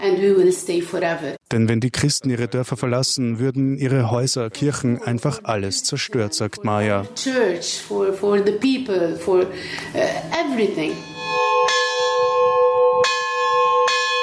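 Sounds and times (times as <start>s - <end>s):
speech: 0.0s - 11.4s
monastery church bells ringing: 10.8s - 14.2s.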